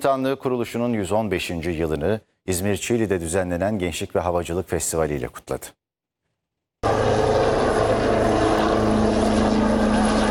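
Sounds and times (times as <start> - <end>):
speech: 0.0 - 5.8
helicopter rotor drone at an air force aviation festival in Çiğli, İzmir: 6.8 - 10.2.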